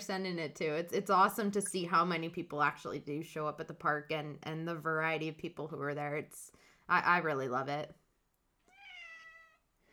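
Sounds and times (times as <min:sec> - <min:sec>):
speech: 0:00.0 - 0:08.0
female cat meowing: 0:08.6 - 0:09.6.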